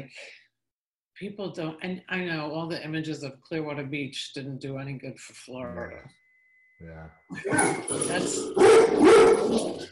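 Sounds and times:
speech: 0.0s - 0.4s, 1.2s - 6.2s, 6.8s - 9.9s
chocolate Labrador barking: 7.5s - 9.8s.

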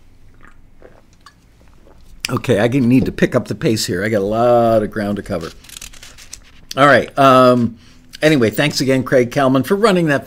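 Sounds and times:
low hum: 0.0s - 10.2s
person sipping an energy drink: 0.1s - 2.5s
soft wet mouth clicks: 0.3s - 2.4s
gulp of a drink: 0.3s - 2.5s
speech: 2.3s - 5.7s, 6.8s - 10.2s.

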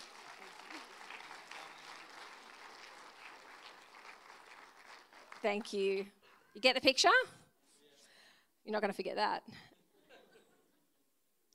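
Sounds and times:
audience applause: 0.0s - 5.8s
speech: 5.4s - 7.4s, 8.7s - 9.7s.

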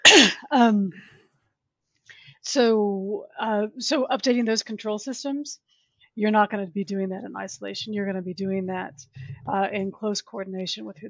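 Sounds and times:
person coughing: 0.0s - 0.5s
speech: 0.2s - 1.2s, 2.4s - 11.0s.

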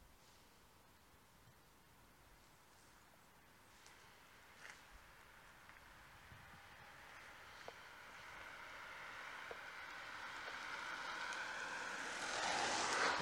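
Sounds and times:
car driving past outdoors: 4.0s - 13.1s.

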